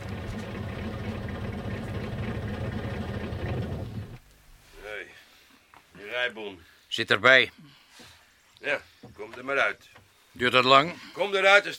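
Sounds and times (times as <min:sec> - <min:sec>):
heavy truck engine idling: 0:00.0 - 0:04.2
speech: 0:06.3 - 0:07.6, 0:08.6 - 0:11.7.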